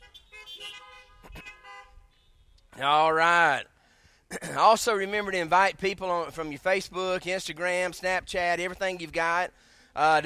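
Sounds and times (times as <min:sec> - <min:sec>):
car horns honking in answer to a church service: 0:00.0 - 0:02.7
speech: 0:02.8 - 0:03.7, 0:04.3 - 0:10.2.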